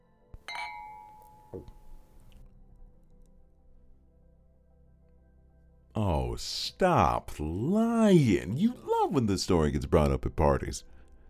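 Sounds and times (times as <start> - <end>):
glasses clinking in a toast: 0.4 - 2.4
soft knock: 1.0 - 2.2
speech: 1.5 - 1.8, 6.0 - 11.0.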